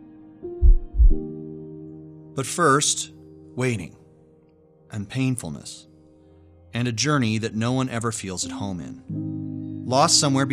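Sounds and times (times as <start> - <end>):
human heartbeat thumps: 0.6 - 1.3
speech: 2.4 - 4.0, 4.9 - 5.9, 6.7 - 9.3, 9.9 - 10.5.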